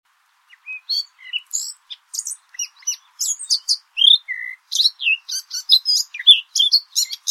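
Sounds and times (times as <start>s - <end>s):
Eurasian blackcap Sylvia atricapilla singing a rich varied warble: 0.4s - 7.2s.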